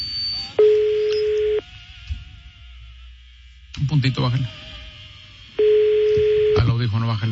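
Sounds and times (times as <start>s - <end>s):
phone line ring tone as an outgoing call connects: 0.2s - 1.6s, 5.6s - 6.7s
speech: 4.0s - 4.7s, 6.7s - 7.3s.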